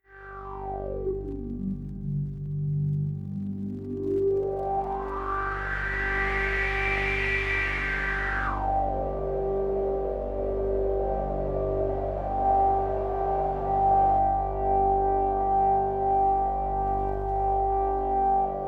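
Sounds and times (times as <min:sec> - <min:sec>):
drone in G: 0:00.0 - 0:18.6.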